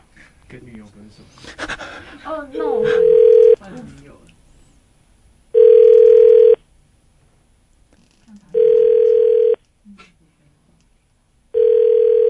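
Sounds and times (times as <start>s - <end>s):
speech: 0.5s - 4.3s
faint murmuring voices: 2.2s - 4.3s
electronic phone ringback tone: 2.8s - 3.6s, 5.6s - 6.6s, 8.6s - 9.6s, 11.6s - 12.2s.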